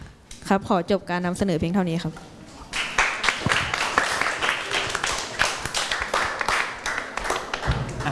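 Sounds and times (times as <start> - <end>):
speech: 0.5 - 2.4
room full of people clapping in a classroom: 2.7 - 8.0.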